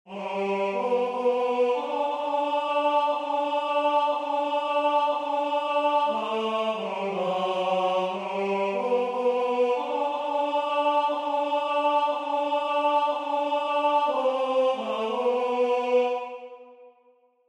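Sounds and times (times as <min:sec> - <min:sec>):
tenor singing: 0:00.1 - 0:16.7.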